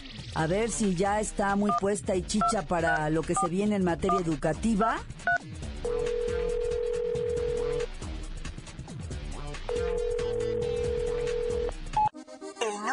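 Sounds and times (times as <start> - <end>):
music: 0.0 - 12.9
speech: 0.4 - 5.2
telephone ringback tones: 5.9 - 7.9, 9.7 - 11.7.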